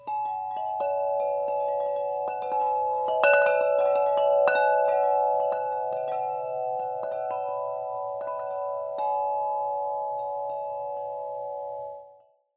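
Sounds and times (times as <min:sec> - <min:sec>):
46in bell metal wind chimes: 0:00.0 - 0:12.4.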